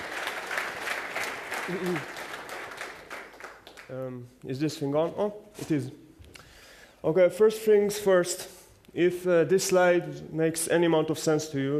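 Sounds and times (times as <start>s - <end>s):
audience clapping to welcome a speaker: 0.0s - 4.2s
murmured voice: 1.6s - 2.2s
speech: 1.7s - 2.2s, 3.9s - 6.0s, 7.0s - 11.7s.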